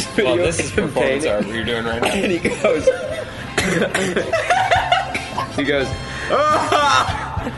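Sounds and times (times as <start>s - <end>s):
speech: 0.2s - 4.8s, 5.6s - 7.5s
laughter: 0.3s - 7.5s
person mimicking a fit of coughing: 2.0s - 4.4s.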